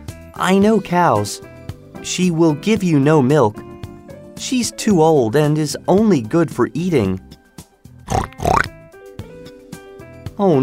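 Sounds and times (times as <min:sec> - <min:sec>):
speech: 0:00.4 - 0:03.7, 0:04.4 - 0:07.3, 0:10.4 - 0:10.6
pig grunting: 0:08.1 - 0:08.7.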